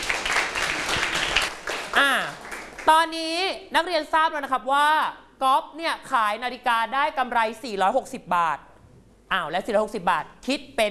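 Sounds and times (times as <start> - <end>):
students in a classroom clapping for a classmate: 0.0 - 2.9
speech: 2.0 - 8.7, 9.3 - 10.9.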